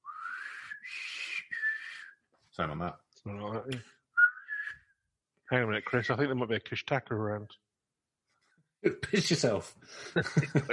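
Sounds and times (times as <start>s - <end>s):
high-pitched three-part whistle: 0.0s - 2.1s, 4.2s - 4.8s
speech: 2.6s - 4.0s, 5.5s - 7.6s, 8.8s - 10.7s
laughter: 8.9s - 10.7s.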